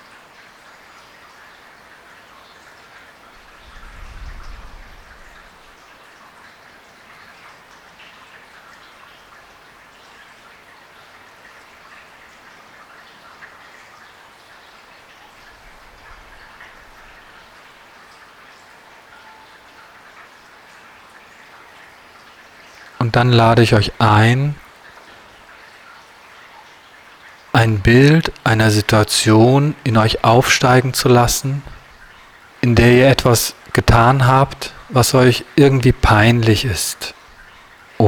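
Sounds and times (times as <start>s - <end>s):
steady rain: 0.0s - 38.0s
low rumbles: 3.5s - 5.7s
speech: 23.0s - 24.6s, 27.7s - 31.7s, 32.6s - 37.2s.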